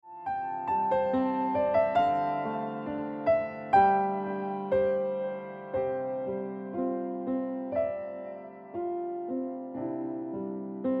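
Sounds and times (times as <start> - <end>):
piano music ringtone: 0.1 - 10.9.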